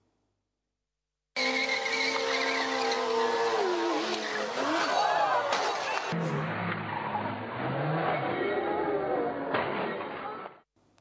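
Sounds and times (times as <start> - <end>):
motorcycle engine revving during a stunt: 1.4 - 9.5
motorcycle tires screeching: 1.4 - 10.4.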